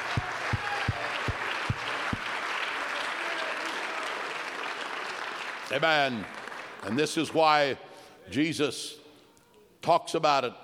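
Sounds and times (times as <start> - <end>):
large crowd clapping: 0.0 - 7.4
speech: 5.7 - 9.0, 9.8 - 10.6.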